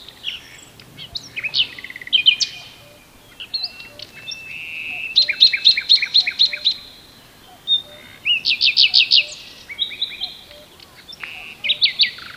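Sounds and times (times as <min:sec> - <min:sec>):
common nightingale Luscinia megarhynchos singing: 0:00.0 - 0:12.3.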